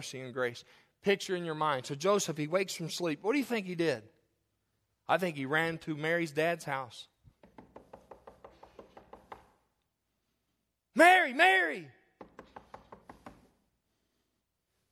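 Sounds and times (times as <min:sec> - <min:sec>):
speech: 0:00.0 - 0:04.2, 0:05.1 - 0:07.1, 0:11.0 - 0:12.0
rapid firm knocking on a wooden door: 0:07.4 - 0:09.5, 0:12.2 - 0:13.4
person shouting: 0:11.0 - 0:11.9.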